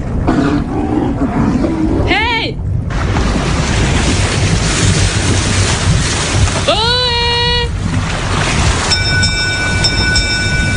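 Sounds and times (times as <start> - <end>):
boat approaching with steady low rumble: 0.0 - 10.7.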